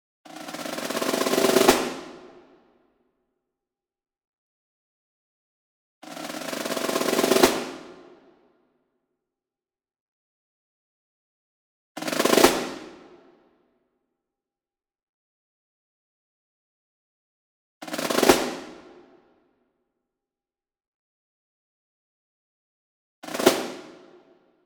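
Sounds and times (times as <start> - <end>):
medium marching snare drum roll: 0.3 - 2.5, 6.0 - 8.2, 12.0 - 13.1, 17.9 - 19.0, 23.2 - 24.1.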